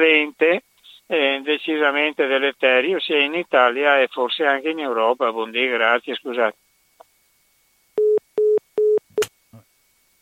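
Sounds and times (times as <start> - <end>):
speech: 0.0 - 6.7
phone busy tone beeps: 8.0 - 9.0.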